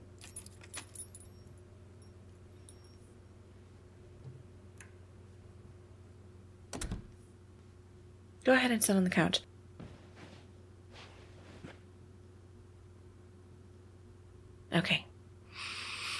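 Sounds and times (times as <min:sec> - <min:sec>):
low steady hum: 0:00.0 - 0:16.1
keys jangling while locking front doors: 0:00.2 - 0:03.0
speech: 0:08.5 - 0:09.5.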